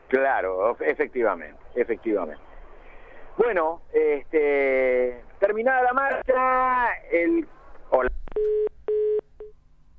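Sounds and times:
speech: 0.1 - 2.5, 3.4 - 8.7
telephone tones from an old phone as a call cuts off: 8.4 - 9.5.

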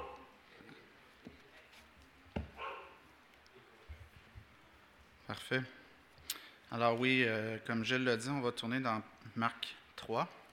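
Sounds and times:
dog barking during a church sermon gathering: 0.0 - 0.3, 2.6 - 3.0
soft thuds: 2.3 - 2.7
speech: 5.3 - 5.8, 6.7 - 10.4.

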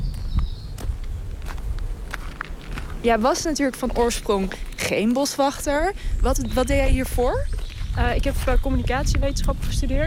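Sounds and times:
people's footsteps crunching in a forest: 0.0 - 8.7
speech: 3.0 - 10.0.

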